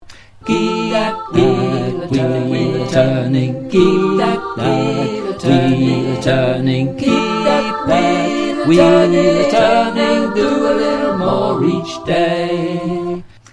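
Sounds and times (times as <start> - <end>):
all chorus voices: 0.4 - 13.3.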